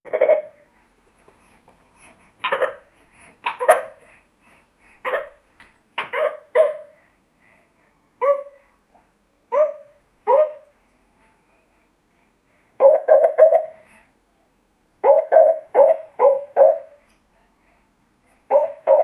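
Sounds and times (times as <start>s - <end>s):
pet dog barking: 3.5s - 4.0s, 5.0s - 5.4s, 6.1s - 7.0s, 8.2s - 8.6s, 9.5s - 10.7s, 12.8s - 13.8s, 15.0s - 17.0s, 18.5s - 19.0s.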